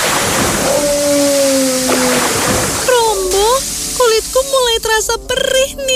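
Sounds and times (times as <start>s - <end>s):
water sloshing and splashing as someone wades into a river: 0.0s - 4.6s
speech: 4.8s - 5.9s.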